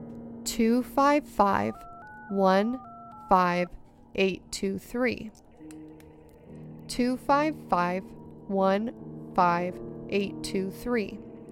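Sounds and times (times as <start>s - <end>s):
speech: 0.5s - 5.4s, 6.9s - 11.3s
telephone touch-tone keypad beeps: 1.5s - 3.8s.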